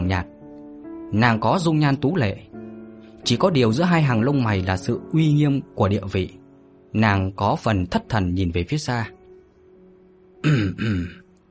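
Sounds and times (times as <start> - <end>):
speech: 0.1 - 0.3, 1.1 - 2.5, 3.2 - 9.2, 10.4 - 11.2
man softly clearing his throat: 10.4 - 11.3.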